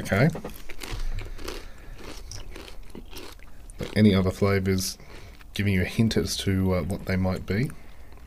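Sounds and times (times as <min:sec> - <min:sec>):
speech: 0:00.0 - 0:00.6, 0:04.0 - 0:05.0, 0:05.6 - 0:07.8
crunching and chewing on a salty cheese-flavoured snack: 0:00.2 - 0:05.6.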